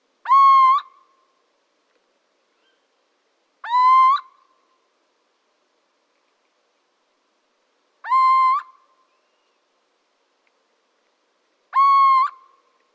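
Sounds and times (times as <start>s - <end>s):
little owl calling: 0.2s - 1.1s, 2.5s - 2.9s, 3.6s - 4.5s, 8.0s - 9.6s, 11.7s - 12.7s.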